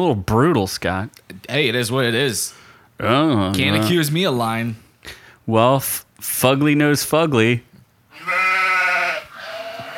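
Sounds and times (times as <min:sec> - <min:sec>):
speech: 0:00.0 - 0:08.3
goat bleating: 0:08.1 - 0:09.9.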